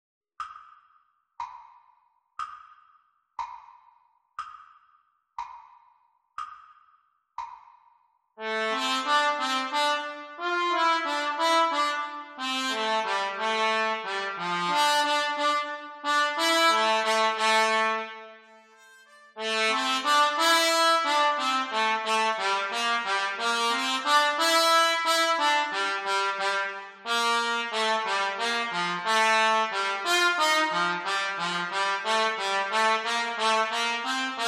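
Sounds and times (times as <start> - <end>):
trumpet and cornet duet practice: 8.4 - 34.4.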